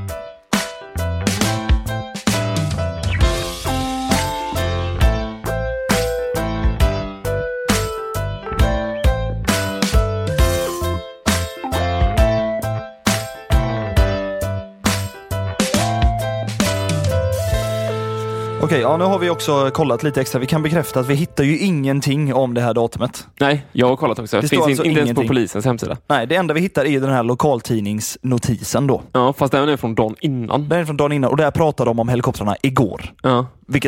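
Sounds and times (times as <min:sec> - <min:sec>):
upbeat podcast music jingle with percussive beat and bright melodic notes: 0:00.0 - 0:21.8
speech: 0:18.7 - 0:33.8.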